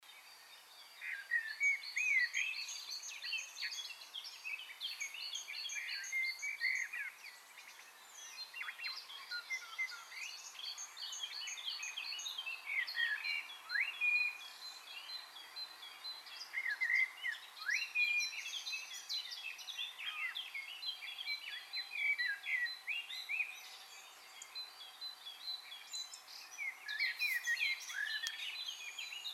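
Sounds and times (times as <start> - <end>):
birds communicating: 1.0 - 29.3.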